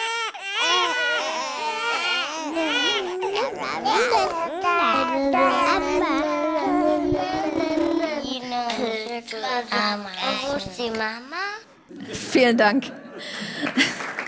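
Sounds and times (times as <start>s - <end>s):
recorded infants crying and babbling: 0.0s - 10.6s
speech: 9.3s - 11.4s, 12.1s - 13.9s.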